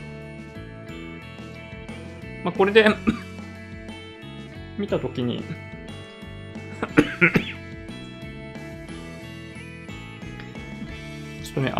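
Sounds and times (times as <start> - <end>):
speech: 2.4 - 3.3, 4.8 - 5.7, 7.2 - 7.5, 11.6 - 11.7
raspy coughs: 2.9 - 3.3, 6.8 - 7.6
laughter: 6.8 - 7.6.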